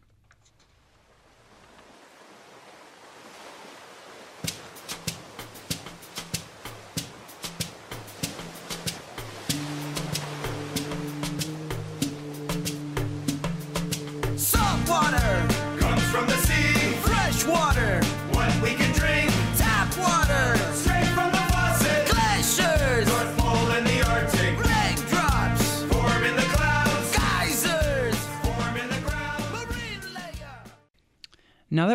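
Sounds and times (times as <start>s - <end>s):
steady percussive beat: 4.4s - 30.7s
full band playing dense rhythmic instrumentation: 9.5s - 30.7s
bass line: 14.3s - 30.8s.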